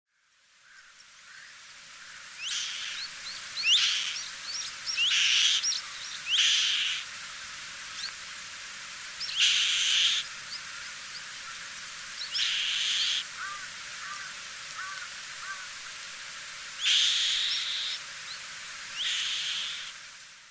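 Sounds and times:
Black-winged Kite calling on Ishigaki: 2.4s - 7.1s, 9.2s - 11.6s, 12.2s - 15.7s, 16.8s - 20.0s.

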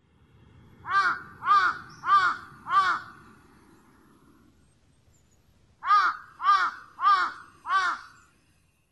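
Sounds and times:
faint low noise: 0.0s - 8.9s
large-billed crow cawing: 0.8s - 3.3s, 5.8s - 8.2s.

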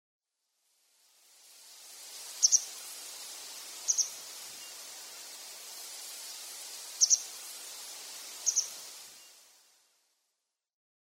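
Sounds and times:
soft steady hiss: 0.3s - 10.7s
Taiwan white wagtail ocularis calling in Sakata: 2.2s - 9.4s.

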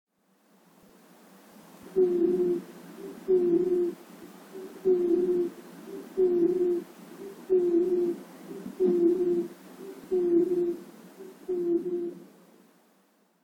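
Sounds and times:
Japanese Night Heron calling: 1.9s - 12.2s.

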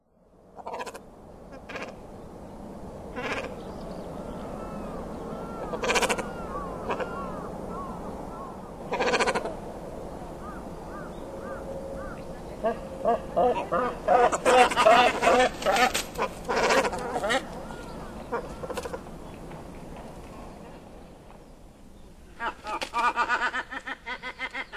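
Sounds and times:
Great Cormorant in southern Hyogo Prefecture: 0.6s - 2.0s, 3.1s - 9.7s, 10.3s - 19.2s, 22.3s - 24.7s.

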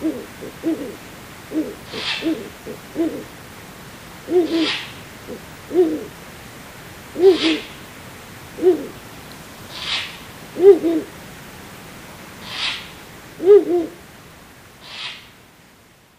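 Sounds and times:
Ural owl hooting at Sukagawa: 0.0s - 3.3s, 4.2s - 6.2s, 7.1s - 7.8s, 8.6s - 9.0s, 9.7s - 11.1s, 12.4s - 14.0s, 14.8s - 15.3s.

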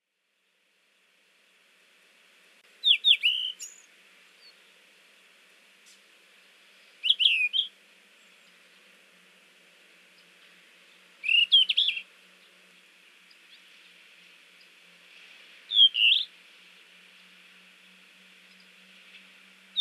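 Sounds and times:
Yellow-rumped Flycatcher calling in Hyogo: 2.8s - 4.7s, 6.7s - 8.8s, 10.1s - 12.5s, 15.7s - 16.3s.

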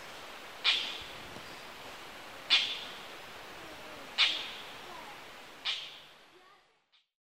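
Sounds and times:
quiet hiss: 0.0s - 6.9s
Oriental dollarbird giving a short grating call in Kuroda, Tottori, Japan: 2.5s - 3.0s, 4.2s - 4.7s.

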